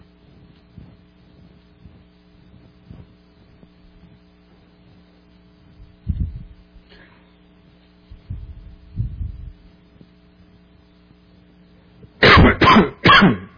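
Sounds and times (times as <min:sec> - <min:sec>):
soft throaty rumbles: 0:00.0 - 0:10.9
low steady hum: 0:00.0 - 0:13.5
harsh coughs: 0:12.2 - 0:13.5.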